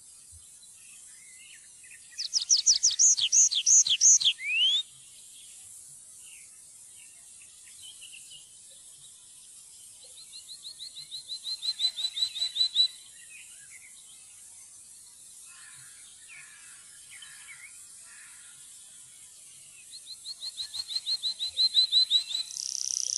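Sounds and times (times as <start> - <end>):
tree pipit song with high falling notes and fast trill: 1.8 - 4.9, 10.6 - 14.0, 19.8 - 23.1.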